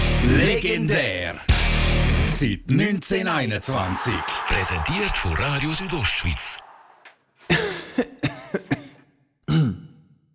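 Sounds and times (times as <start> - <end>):
speech: 0.2 - 1.5, 2.3 - 6.7
butler with a slight cold coughing: 7.5 - 10.0
gravelly throat-clearing cough: 7.5 - 10.1.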